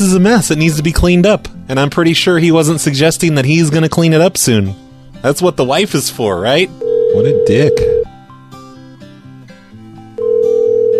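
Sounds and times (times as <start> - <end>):
speech: 0.0 - 8.0
telephone ringing electronically: 6.8 - 8.1, 10.2 - 10.9.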